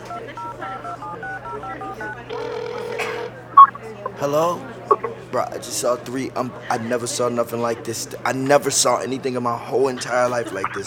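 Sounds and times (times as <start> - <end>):
phone keypad beeps from dialing: 0.0 - 3.8, 4.9 - 5.1, 10.6 - 10.8
laughter: 0.0 - 10.8
speech: 4.2 - 4.7, 5.3 - 10.8.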